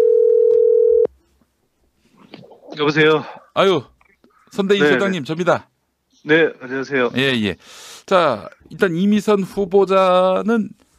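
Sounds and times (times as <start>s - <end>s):
telephone dial tone while connecting call: 0.0s - 1.1s
speech: 2.8s - 10.8s.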